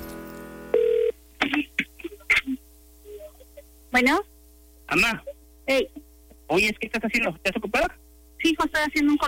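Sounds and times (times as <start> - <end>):
electronic telephone ring tone on a phone line: 0.7 - 1.1
speech: 3.9 - 4.3, 4.9 - 9.2.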